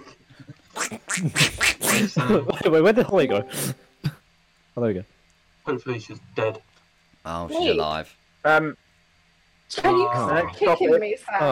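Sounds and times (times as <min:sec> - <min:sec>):
duck quacking: 0:00.8 - 0:02.1
speech: 0:01.2 - 0:03.8, 0:04.8 - 0:08.8, 0:09.7 - 0:11.5.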